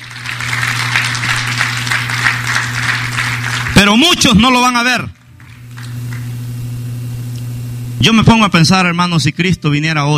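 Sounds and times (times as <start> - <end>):
church congregation applauding: 0.0 - 6.4
low electrical hum: 0.0 - 10.1
speech: 3.8 - 5.2, 8.0 - 10.1.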